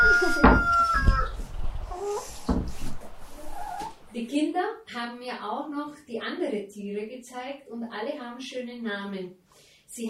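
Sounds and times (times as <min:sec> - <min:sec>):
rooster crowing: 0:00.0 - 0:01.4
sharp bursts of fowl calls: 0:00.0 - 0:02.5
chickens clucking in an outdoor yard: 0:00.0 - 0:04.1
speech: 0:05.0 - 0:10.0.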